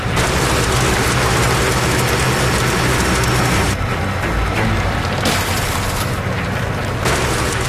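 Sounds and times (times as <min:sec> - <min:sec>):
rock truck engine droning on the ice: 0:00.0 - 0:07.6
frozen lake ice booming and cracking at an ice crossing: 0:05.1 - 0:06.3.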